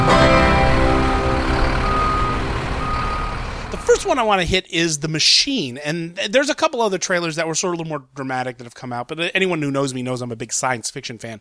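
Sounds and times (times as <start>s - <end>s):
constant vehicle engine rumble: 0.0s - 4.6s
vehicle reversing beeps while parking: 0.7s - 4.1s
speech: 4.0s - 11.3s.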